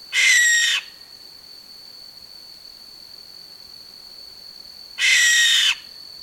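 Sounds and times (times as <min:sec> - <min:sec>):
barn owl screeching: 0:00.2 - 0:00.9, 0:05.0 - 0:05.8.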